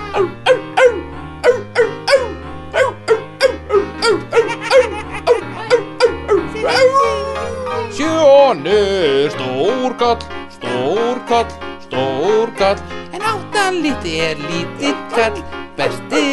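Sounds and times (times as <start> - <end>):
low stepping bass line music: 0.0 - 16.3
dog running up and barking: 0.1 - 6.8
speech: 0.2 - 0.6, 8.5 - 10.4, 11.2 - 12.9, 13.7 - 16.3
laughter: 4.0 - 9.2.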